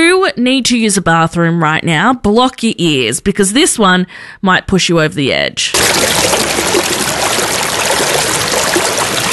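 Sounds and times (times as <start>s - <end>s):
speech: 0.3s - 7.5s
stream running and babbling over rocks: 5.8s - 9.3s.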